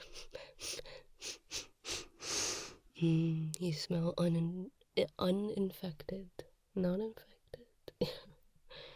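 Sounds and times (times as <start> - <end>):
wet congested nasal sniffs and snuffle: 0.0 - 2.8
speech: 3.0 - 7.3, 8.0 - 8.2.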